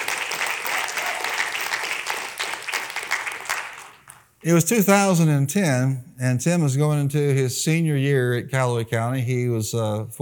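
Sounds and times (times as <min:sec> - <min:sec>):
crowd applauding: 0:00.0 - 0:04.3
speech: 0:04.4 - 0:10.2.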